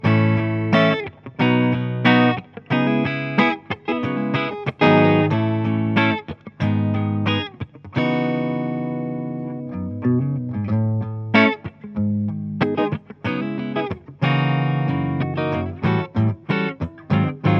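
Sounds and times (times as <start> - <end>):
clean Gibson 335 electric guitar through Marshall DSL401 amplifier: 0.0 - 17.5.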